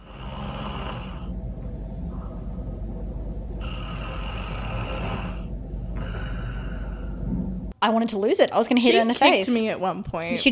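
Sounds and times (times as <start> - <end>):
sleeping person snoring loudly: 0.0 - 1.3, 3.6 - 7.2
quiet breathing: 0.0 - 7.7
speech: 7.8 - 10.4.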